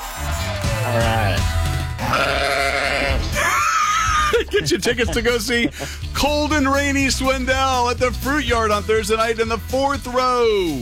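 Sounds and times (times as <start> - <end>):
speech: 0.9 - 2.6, 4.5 - 10.7
goat bleating: 2.0 - 4.2
laughter: 3.2 - 6.4.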